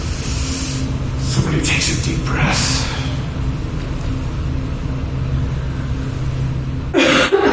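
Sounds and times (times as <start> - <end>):
steady low hum: 0.0 - 7.5
speech: 1.3 - 2.9
loud rough cough: 7.0 - 7.5.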